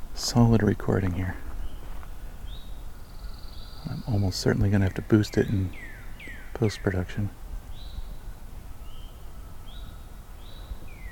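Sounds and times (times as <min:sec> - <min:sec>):
faint birdsong from northern cardinal, pine warbler and eastern towhee: 0:00.0 - 0:11.1
speech: 0:00.2 - 0:01.5, 0:03.8 - 0:05.9, 0:06.6 - 0:07.4.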